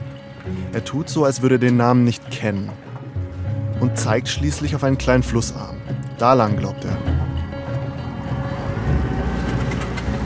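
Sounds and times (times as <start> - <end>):
speech: 0.5 - 2.9, 3.8 - 7.1
moving boat engine droning on the Amazon: 7.2 - 10.2.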